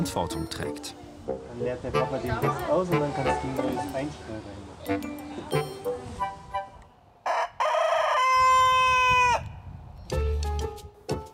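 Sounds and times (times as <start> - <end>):
speech: 0.0 - 6.4
rooster crowing: 7.2 - 9.5.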